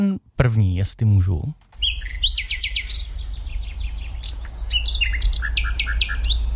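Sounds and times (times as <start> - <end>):
speech: 0.0 - 2.1
faint birdsong: 1.6 - 6.5
common nightingale singing: 1.7 - 6.5.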